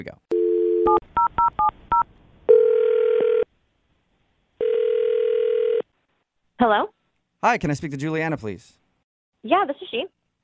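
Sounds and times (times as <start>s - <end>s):
speech: 0.0s - 1.8s, 6.6s - 8.8s, 9.4s - 10.4s
telephone ringback tone: 0.3s - 3.5s, 4.6s - 5.8s.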